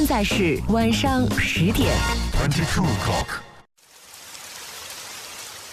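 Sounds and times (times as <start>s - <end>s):
speech: 0.1s - 3.5s
rain falling: 3.8s - 5.7s.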